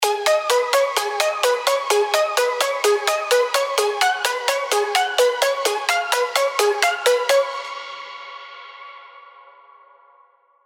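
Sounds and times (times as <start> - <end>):
progressive synth arpeggios in G sharp minor: 0.0 - 8.0.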